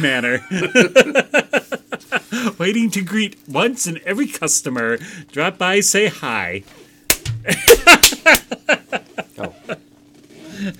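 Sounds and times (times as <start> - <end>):
speech: 0.0 - 8.7
laughter: 0.2 - 2.5, 7.4 - 9.8
cartoonish punch sound effects: 7.1 - 8.0.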